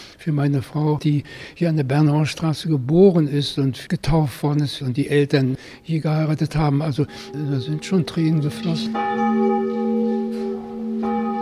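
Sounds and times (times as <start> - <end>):
speech: 0.2 - 9.8
old church bells ringing in a bell house beside a chapel: 6.6 - 11.3.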